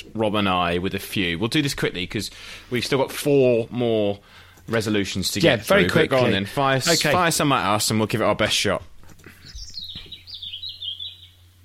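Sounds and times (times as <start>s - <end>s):
speech: 0.2s - 8.9s
European robin song: 9.4s - 11.6s.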